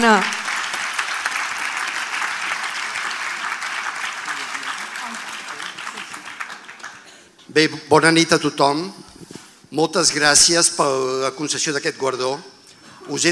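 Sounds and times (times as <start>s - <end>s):
speech: 0.0s - 0.4s, 7.6s - 9.0s, 9.7s - 13.3s
audience at an award ceremony applauding: 0.2s - 7.0s.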